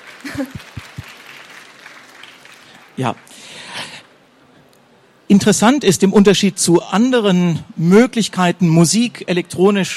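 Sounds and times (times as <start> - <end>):
quick evenly spaced hand claps: 0.0 - 2.9
faint room hum: 0.0 - 9.9
speech: 0.3 - 0.9, 3.0 - 3.3, 5.3 - 9.9.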